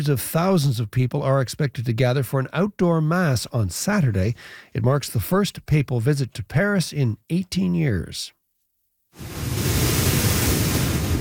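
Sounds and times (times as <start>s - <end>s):
speech: 0.0s - 8.4s
storm-driven hurricane surf crashing into beachfront homes: 9.2s - 11.1s.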